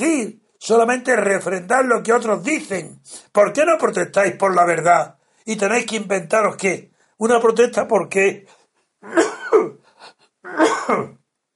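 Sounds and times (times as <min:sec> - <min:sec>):
speech: 0:00.0 - 0:11.2
faint throaty sound: 0:08.4 - 0:11.3
person coughing harshly: 0:09.0 - 0:11.2.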